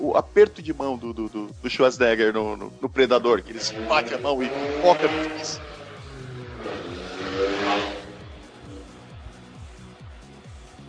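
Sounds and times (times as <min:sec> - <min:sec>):
speech: 0:00.0 - 0:05.8
motorcycle engine revving through rising gear shifts: 0:03.1 - 0:10.6.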